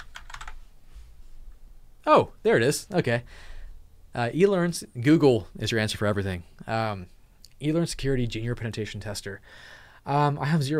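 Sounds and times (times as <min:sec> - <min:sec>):
computer keyboard typing: 0:00.0 - 0:00.6
quiet room hum: 0:00.0 - 0:10.7
speech: 0:02.1 - 0:03.5, 0:04.2 - 0:10.7.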